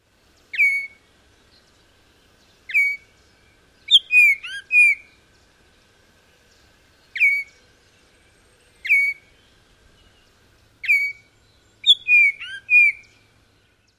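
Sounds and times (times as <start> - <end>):
oriole singing and whistling: 0.6 - 1.0, 2.7 - 3.1, 3.9 - 5.1, 7.1 - 7.6, 8.8 - 9.3, 10.8 - 13.2.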